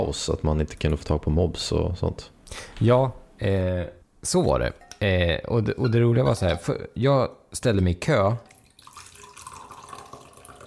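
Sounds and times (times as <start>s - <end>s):
speech: 0.0s - 8.5s
coffee pouring into a cup: 8.4s - 10.6s.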